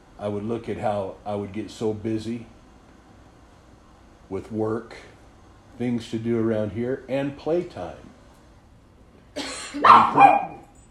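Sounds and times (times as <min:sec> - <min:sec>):
speech: 0:00.2 - 0:02.6, 0:04.3 - 0:05.1, 0:05.8 - 0:08.2, 0:09.4 - 0:10.5
dog barking: 0:09.8 - 0:10.7.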